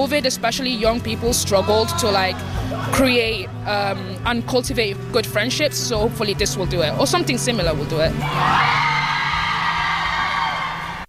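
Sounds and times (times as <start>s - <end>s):
speech: 0.0s - 9.0s
crowd of women screaming: 8.2s - 11.0s.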